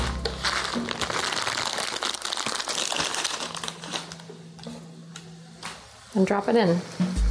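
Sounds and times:
plastic ramen package being torn open: 0.0s - 4.4s
speech: 6.2s - 7.2s.

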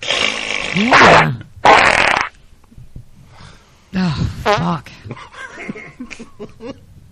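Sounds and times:
fart: 0.0s - 2.4s
speech: 0.8s - 1.5s.

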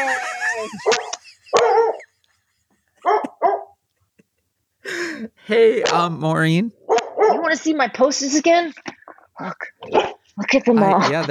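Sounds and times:
speech: 0.0s - 1.2s, 5.5s - 6.8s, 7.5s - 11.2s
laughter: 0.0s - 3.4s, 10.8s - 11.2s
dog barking: 0.8s - 2.1s, 3.0s - 3.8s, 6.8s - 7.6s, 9.8s - 10.2s.

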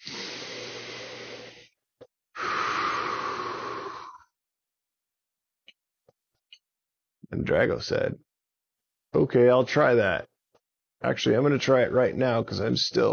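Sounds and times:
deep breathing: 2.4s - 4.4s
speech: 7.3s - 8.3s, 9.2s - 10.3s, 11.0s - 13.1s.

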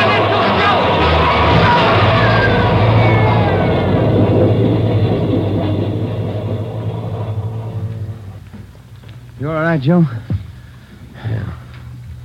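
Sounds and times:
metallic squealing of subway train: 0.0s - 8.9s
subway train roaring past in a subway tunnel: 0.0s - 12.2s
speech: 9.8s - 10.2s.

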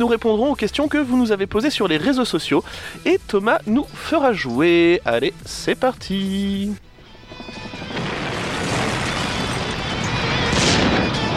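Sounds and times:
speech: 0.0s - 6.9s
crackling blasts: 6.8s - 11.3s
explosion sound effects rumbling roar: 7.2s - 11.3s.

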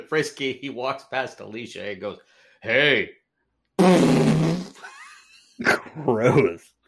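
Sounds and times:
speech: 0.1s - 3.2s, 3.8s - 5.0s, 5.6s - 6.8s
loud fart with low buzzy tone: 3.8s - 4.8s.

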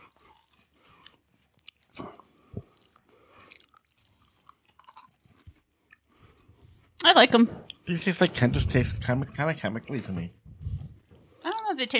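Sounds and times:
biting and chewing a chocolate hazelnut wafer: 0.0s - 6.9s
speech: 7.0s - 10.4s, 11.8s - 11.9s.

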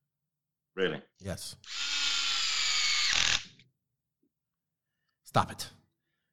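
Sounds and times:
speech: 0.8s - 1.9s, 5.3s - 5.8s
electric drill whirring at high speed: 1.6s - 3.6s.

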